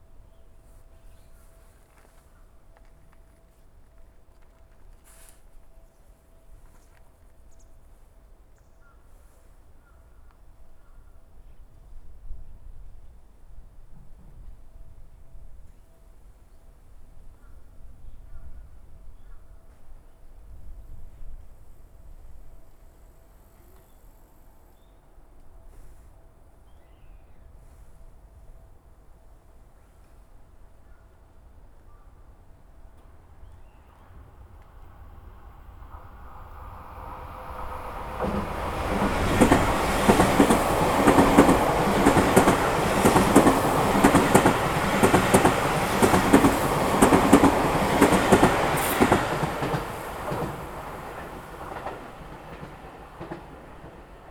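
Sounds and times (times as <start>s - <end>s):
train passing: 32.8s - 54.2s.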